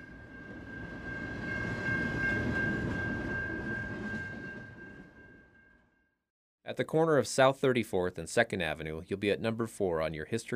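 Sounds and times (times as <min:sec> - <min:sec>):
freight train rumbling past on railroad tracks in Billings Montana: 0:00.0 - 0:05.9
speech: 0:06.7 - 0:10.5.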